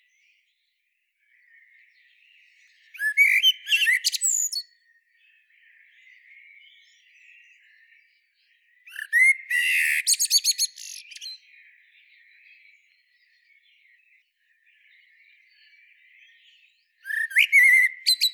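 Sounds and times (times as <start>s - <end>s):
Common blackbird Turdus merula singing: 1.2s - 18.3s.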